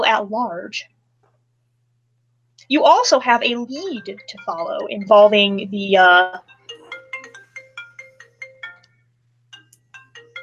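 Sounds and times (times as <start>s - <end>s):
speech: 0.1s - 0.9s, 2.6s - 6.5s
low steady hum: 2.6s - 7.0s
marimba-style phone ringtone for an incoming call: 3.8s - 10.4s.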